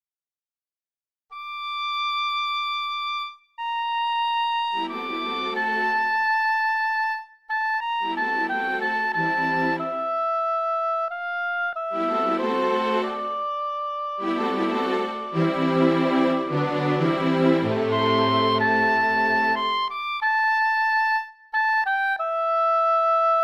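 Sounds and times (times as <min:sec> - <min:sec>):
oboe: 0:01.4 - 0:23.4
strings: 0:03.9 - 0:20.2.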